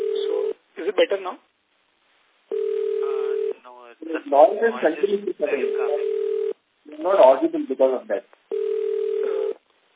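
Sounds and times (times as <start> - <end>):
telephone ringing tone on the call line: 0.0 - 0.6, 2.5 - 3.6, 5.6 - 6.6, 8.5 - 9.6
speech: 1.0 - 1.5, 3.7 - 6.3, 7.0 - 8.4.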